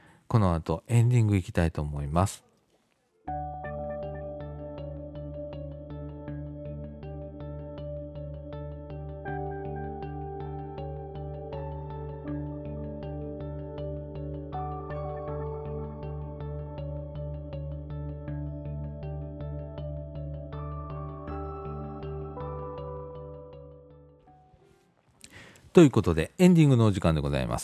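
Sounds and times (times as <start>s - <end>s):
speech: 0.3s - 2.5s, 25.8s - 27.6s
instrumental music with sustained keyboard-like tones: 3.3s - 25.1s.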